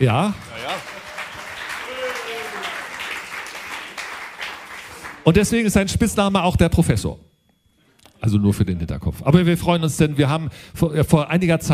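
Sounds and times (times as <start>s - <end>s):
speech: 0.0s - 0.4s, 5.2s - 7.3s, 8.2s - 11.7s
crowd applauding: 0.0s - 5.6s
short rising whoop or cheer: 0.6s - 3.0s.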